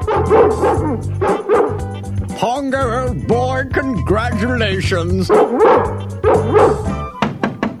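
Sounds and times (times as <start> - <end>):
dog barking excitedly: 0.0 - 3.2, 5.3 - 7.2
speech: 0.3 - 1.2, 2.7 - 7.0.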